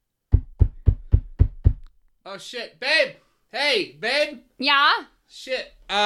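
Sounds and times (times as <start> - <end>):
firm knocking on a door: 0.3 - 1.9
speech: 2.3 - 6.0.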